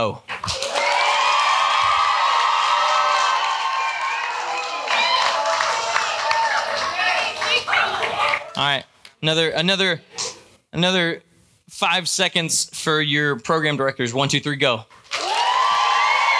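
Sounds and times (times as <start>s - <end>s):
speech: 0.0s - 0.6s, 8.6s - 10.1s, 10.7s - 15.0s
large crowd of campers cheering, whooping and hollering: 0.4s - 8.6s, 15.1s - 16.3s.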